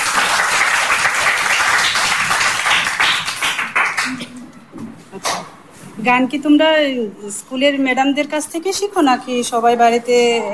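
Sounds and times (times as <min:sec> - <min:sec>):
audience applauding for children: 0:00.0 - 0:04.2
speech: 0:06.0 - 0:10.5.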